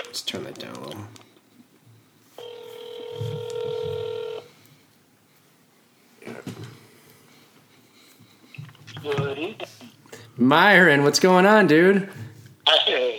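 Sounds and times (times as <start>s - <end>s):
noise: 0.0s - 13.1s
speech: 0.2s - 1.3s, 10.4s - 12.2s
steady electronic phone ringing tone: 2.4s - 4.5s.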